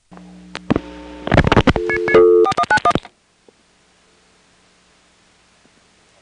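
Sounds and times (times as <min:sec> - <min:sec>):
telephone line clicks: 0:00.5 - 0:03.1
telephone line dial tone: 0:01.6 - 0:03.0
touch-tone phone beeps: 0:01.8 - 0:03.0.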